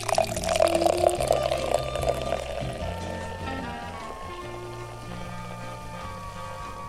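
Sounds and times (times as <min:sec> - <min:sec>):
beer poured from high splashing into a glass: 0:00.0 - 0:03.2
beer foam fizzing and crackling: 0:00.0 - 0:04.1.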